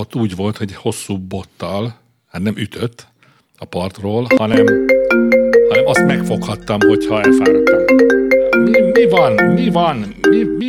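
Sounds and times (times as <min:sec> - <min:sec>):
speech: 0:00.0 - 0:08.2, 0:09.0 - 0:10.6
phone ringtone of an incoming call with a looping electronic melody: 0:04.3 - 0:10.6.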